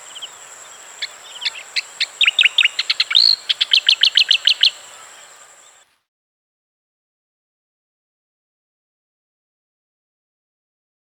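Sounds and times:
striated grassbird singing: 0.0s - 5.8s.

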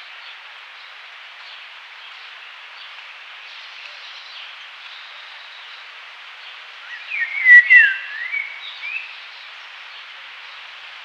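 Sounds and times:
Indian golden oriole fluty whistled song: 6.9s - 9.2s.

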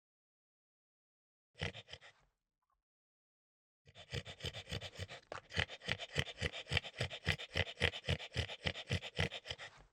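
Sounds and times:
French bulldog snorting: 1.6s - 2.2s, 3.9s - 9.9s.

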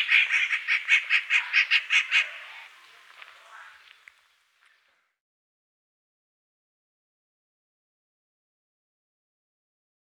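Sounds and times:
Rufous Treepie uttering grating nasal notes: 0.0s - 3.9s.

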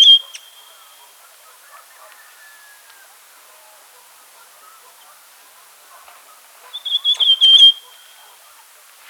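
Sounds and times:
Rufous Sibia whistling calls and song: 0.0s - 0.6s, 6.7s - 7.9s.

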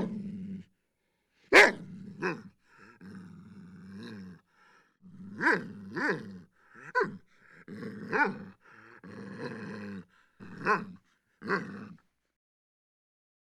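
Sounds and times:
large dog growling low: 0.0s - 0.7s, 1.6s - 12.0s
large dog barking loud and harsh: 1.5s - 2.4s, 5.4s - 6.2s, 6.8s - 7.2s, 8.1s - 8.5s, 10.4s - 10.9s.

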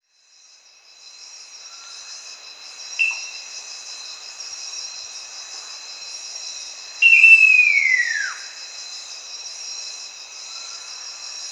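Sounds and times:
Great eared nightjar calling: 3.0s - 3.3s, 7.0s - 8.4s.

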